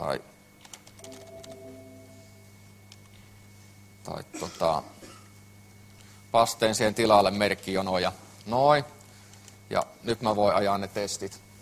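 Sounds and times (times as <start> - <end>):
speech: 0.0 - 0.4, 4.1 - 5.0, 6.3 - 9.0, 9.7 - 11.5
faint steady hum: 0.0 - 11.5
typing on a computer keyboard while editing code: 0.6 - 1.7.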